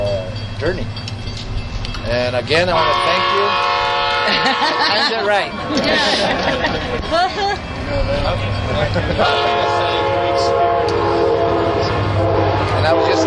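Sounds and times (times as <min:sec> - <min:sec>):
train rumbling past: 0:00.0 - 0:13.2
speech: 0:00.6 - 0:01.2, 0:02.0 - 0:11.1, 0:12.8 - 0:13.2
train horn blast: 0:02.7 - 0:04.9, 0:09.2 - 0:13.2
laughter: 0:04.1 - 0:07.6, 0:08.6 - 0:09.8.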